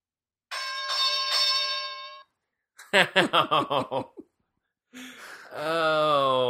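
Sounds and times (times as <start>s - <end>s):
single bell ringing: 0.5s - 2.4s
rhythmic laughter: 2.8s - 4.2s
speech: 2.9s - 4.3s, 4.9s - 6.4s.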